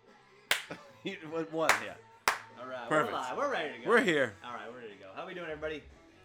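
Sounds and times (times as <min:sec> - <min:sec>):
single sharp hand clap for sync: 0:00.5 - 0:00.8, 0:01.7 - 0:02.5
speech: 0:00.7 - 0:06.2.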